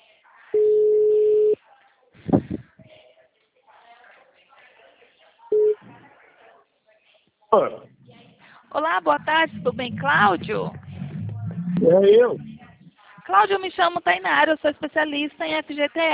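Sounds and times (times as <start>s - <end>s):
faint noise: 0.0s - 16.1s
telephone ringing tone while redialing a call: 0.6s - 1.6s
speech: 7.6s - 7.9s, 8.7s - 10.8s, 11.7s - 12.5s, 13.3s - 16.1s.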